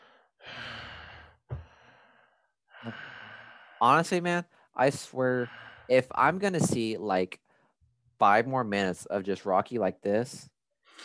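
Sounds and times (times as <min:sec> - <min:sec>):
man imitating heavy breathing with raspy exhales and inhales: 0:00.0 - 0:03.8, 0:05.4 - 0:06.0
speech: 0:02.8 - 0:03.1, 0:03.8 - 0:07.4, 0:08.2 - 0:11.0.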